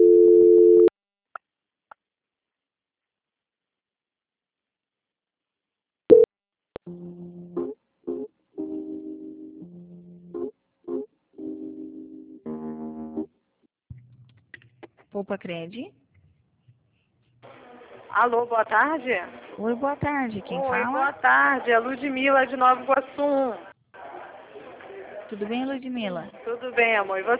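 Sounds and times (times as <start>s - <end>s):
steady telephone tone while a call is transferred: 0.0s - 0.9s
speech: 15.2s - 16.0s, 18.2s - 23.7s, 25.3s - 27.3s.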